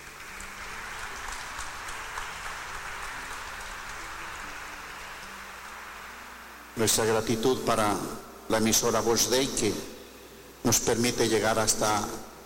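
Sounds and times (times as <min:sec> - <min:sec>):
crowd clapping: 0:00.0 - 0:06.8
speech: 0:06.8 - 0:09.9, 0:10.6 - 0:12.3.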